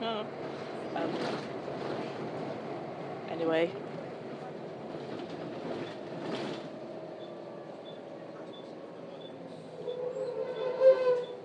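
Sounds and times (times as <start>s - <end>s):
bus engine low rumble heard from inside the vehicle: 0.0s - 11.4s
speech: 3.4s - 3.9s
bus brake high whining squeal: 7.2s - 11.4s.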